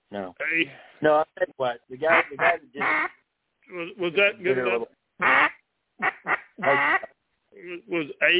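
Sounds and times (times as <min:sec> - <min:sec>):
speech: 0:00.1 - 0:08.3
raspy duck call quacks: 0:00.4 - 0:00.6, 0:02.1 - 0:03.2, 0:05.2 - 0:08.3.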